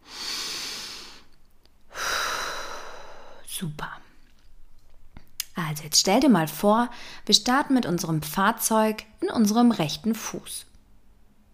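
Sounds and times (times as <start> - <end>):
deep breathing during a guided body-relaxation exercise: 0.0 - 3.5, 6.9 - 7.3
speech: 3.6 - 4.0, 5.6 - 10.7.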